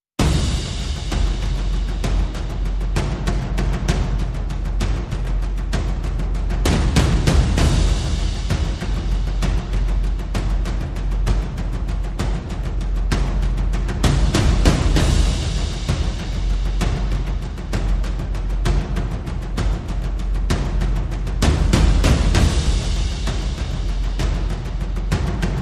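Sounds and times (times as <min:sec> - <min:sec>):
percussion: 0:00.1 - 0:25.6.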